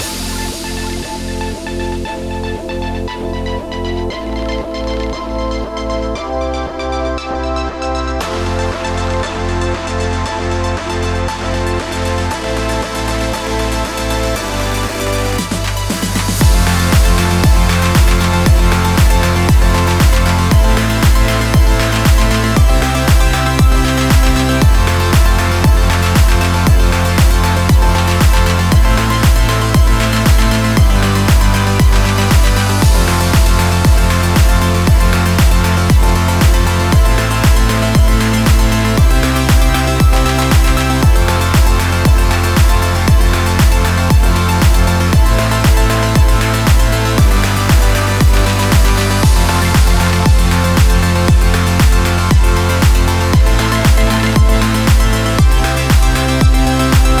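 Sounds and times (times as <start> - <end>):
background pop music: 0.0 - 57.1.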